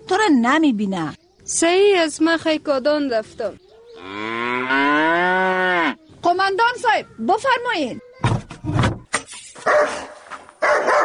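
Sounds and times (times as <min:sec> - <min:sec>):
speech: 0:00.1 - 0:05.1, 0:05.9 - 0:08.1
dog barking: 0:09.6 - 0:11.0.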